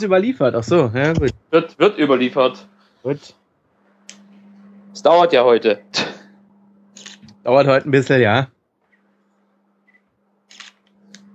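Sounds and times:
speech: 0.0s - 3.4s, 5.0s - 6.1s, 7.4s - 8.6s
low steady hum: 0.0s - 11.3s
camera shutter clicks while taking photos: 7.0s - 7.3s, 10.5s - 10.8s.

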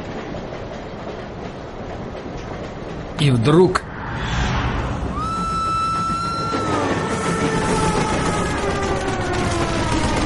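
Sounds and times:
Moscow–Brest passenger train wheels clacking on the rails: 0.0s - 3.2s, 5.2s - 10.2s
Moscow–Brest passenger train rolling rumble: 0.0s - 10.2s
speech: 3.2s - 3.9s.

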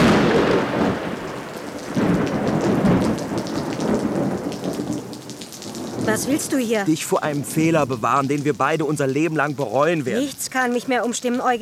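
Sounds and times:
low rumbling thunder: 0.0s - 8.8s
steady heavy rain: 0.0s - 11.6s
speech: 6.1s - 11.6s.

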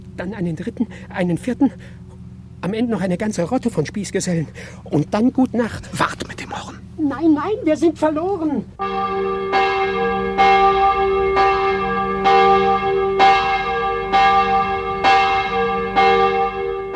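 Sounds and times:
speech: 0.2s - 2.0s, 2.6s - 11.0s
church bell ringing in a village: 8.8s - 16.9s.

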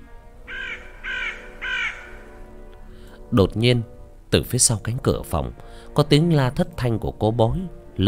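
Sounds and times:
crow cawing mournfully in a dark hospital corridor: 0.5s - 2.6s
speech: 3.3s - 8.0s.

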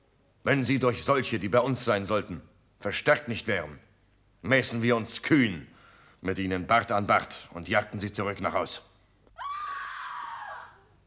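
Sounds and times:
speech: 0.4s - 8.9s
women screaming: 9.4s - 11.0s.

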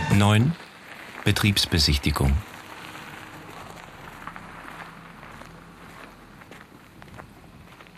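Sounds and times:
footsteps crunching on gravel: 0.1s - 7.9s
speech: 0.2s - 2.5s.

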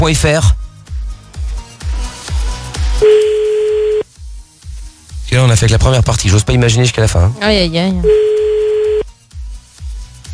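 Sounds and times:
speech: 0.0s - 0.6s, 5.4s - 8.5s
telephone ringing tone while placing a call: 3.0s - 4.0s, 8.0s - 9.0s.

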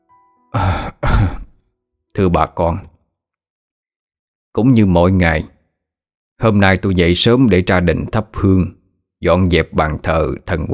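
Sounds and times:
old man's dry cough: 0.6s - 1.6s
speech: 2.2s - 2.9s, 4.5s - 5.5s, 6.4s - 10.7s.

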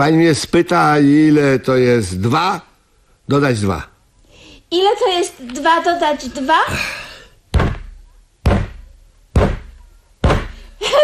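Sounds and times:
speech: 0.0s - 2.7s, 3.3s - 3.9s, 4.7s - 7.0s
foot kicking a chair: 7.5s - 8.8s, 9.4s - 10.7s.

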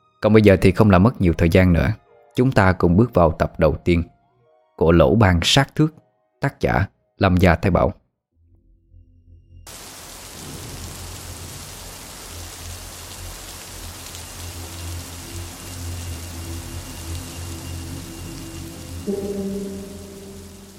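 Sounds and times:
speech: 0.2s - 4.1s, 4.8s - 8.0s
steady rain falling on a late-September afternoon in Rạch Giá: 9.7s - 20.7s
low tonal sounds: 14.5s - 20.7s.

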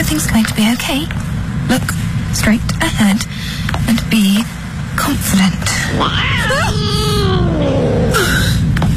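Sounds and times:
speech: 0.2s - 8.7s
steady low rumble: 5.6s - 8.8s
cat meowing: 5.9s - 8.2s.

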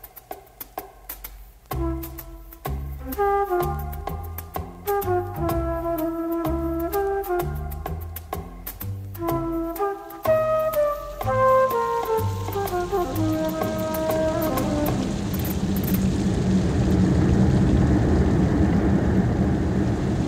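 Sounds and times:
descending musical notes: 1.7s - 16.2s
heavy rain in bad weather: 10.7s - 20.2s.

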